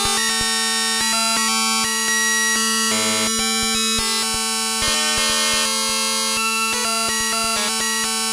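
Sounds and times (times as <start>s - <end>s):
PSS-140 electric bagpipes: 0.2s - 8.3s.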